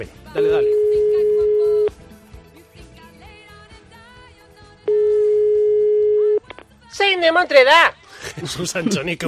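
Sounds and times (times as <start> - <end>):
speech: 0.0 - 1.0, 7.2 - 9.2
music: 0.0 - 9.2
outgoing call ringback tone of long electronic beeps: 0.4 - 1.9, 4.9 - 6.4
laughter: 8.1 - 9.2.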